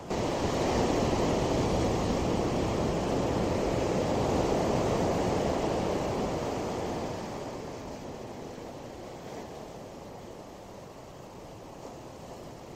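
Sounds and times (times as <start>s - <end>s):
cold wind blowing outdoors after rain buffeting the microphone: 0.0s - 12.7s.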